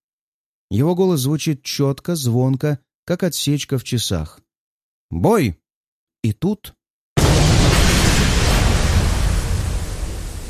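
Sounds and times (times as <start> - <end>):
speech: 0.7 - 4.4, 5.1 - 5.6, 6.2 - 6.8
heavy muffled explosion during a duel: 7.2 - 10.4.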